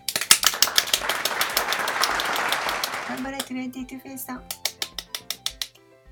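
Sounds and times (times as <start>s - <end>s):
applause sound effect: 0.0s - 3.5s
speech: 3.1s - 4.8s.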